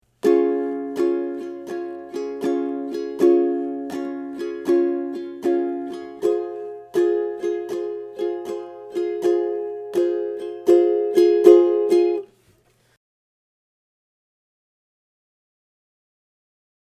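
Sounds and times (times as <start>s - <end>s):
ukulele strumming: 0.1s - 12.4s.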